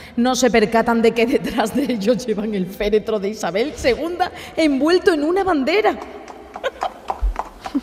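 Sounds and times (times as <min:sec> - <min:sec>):
speech: 0:00.2 - 0:06.2
horse's hooves clip-clopping pulling a carriage: 0:05.1 - 0:07.8.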